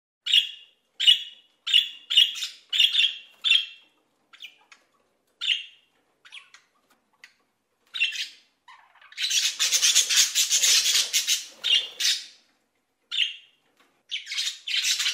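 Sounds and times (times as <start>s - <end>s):
budgerigar calling: 0.3s - 3.8s, 8.0s - 12.4s, 14.1s - 15.1s.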